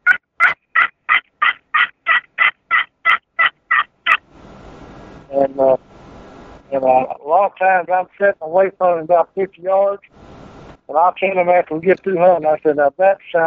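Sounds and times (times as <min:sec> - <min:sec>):
blown turkey call imitating a wild turkey: 0:00.0 - 0:04.2
speech: 0:05.3 - 0:05.9, 0:06.7 - 0:10.2, 0:10.9 - 0:13.4.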